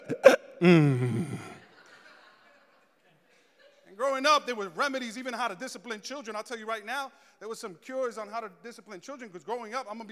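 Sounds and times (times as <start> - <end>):
child hiccuping: 0.0 - 1.4
speech: 0.6 - 1.5, 4.2 - 10.1
laughter: 0.7 - 4.0.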